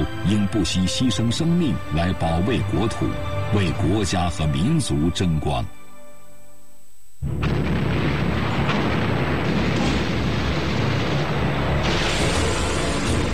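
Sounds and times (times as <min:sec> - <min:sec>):
speech: 0:00.0 - 0:05.8, 0:07.2 - 0:07.6
dense barrage of artillery fire: 0:07.2 - 0:13.3.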